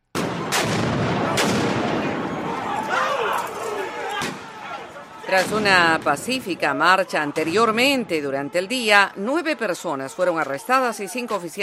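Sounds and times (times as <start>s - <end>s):
fireworks exploding during street protest: 0.0s - 2.8s, 5.3s - 8.0s
loud chaotic crowd din: 0.2s - 11.6s
people shouting: 0.4s - 11.6s
speech: 5.3s - 11.6s.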